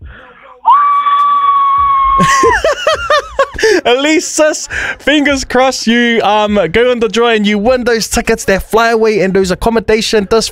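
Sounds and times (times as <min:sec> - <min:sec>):
woman screaming excitedly on a phone call: 0:00.7 - 0:02.5
excited yelps and laughter-like bursts: 0:00.7 - 0:03.6
speech: 0:02.2 - 0:10.5.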